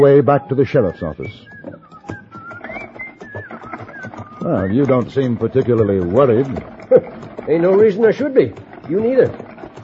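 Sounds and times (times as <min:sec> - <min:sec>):
speech: 0:00.0 - 0:02.2, 0:04.4 - 0:09.5
person whistling a cheerful gliding tune while loading a wagon: 0:00.0 - 0:05.4
scattered clatter: 0:00.9 - 0:09.8.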